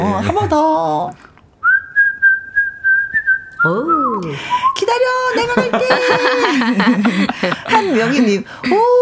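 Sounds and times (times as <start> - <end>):
speech: 0.2 - 1.3, 3.6 - 9.0
person whistling a short tune: 1.6 - 4.8
laughter: 5.2 - 8.4.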